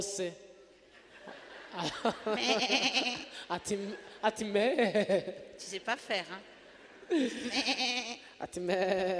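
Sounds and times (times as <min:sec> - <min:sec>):
speech: 0:00.0 - 0:00.5, 0:01.7 - 0:06.5, 0:07.1 - 0:09.1
laughter: 0:00.9 - 0:05.5, 0:06.6 - 0:08.2
person imitating ewes bleating: 0:02.4 - 0:03.3, 0:07.4 - 0:09.1.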